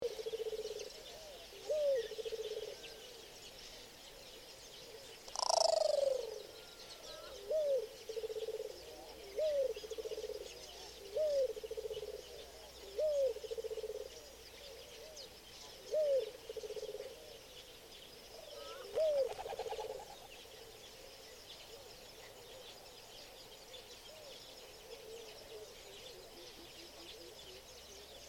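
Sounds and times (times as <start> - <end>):
mourning collared dove: 0.0 - 3.8, 4.8 - 17.5, 18.4 - 20.8, 24.0 - 28.2.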